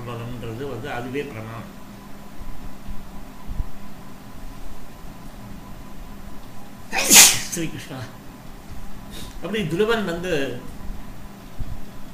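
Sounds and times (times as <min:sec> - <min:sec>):
low hum: 0:00.0 - 0:12.1
speech: 0:00.8 - 0:01.8, 0:07.6 - 0:08.2, 0:09.4 - 0:10.7
person sneezing: 0:06.9 - 0:07.6.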